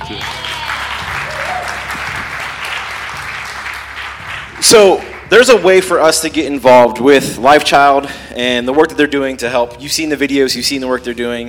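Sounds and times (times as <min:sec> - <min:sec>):
crowd applauding: 0:00.0 - 0:06.0
speech: 0:04.6 - 0:11.4.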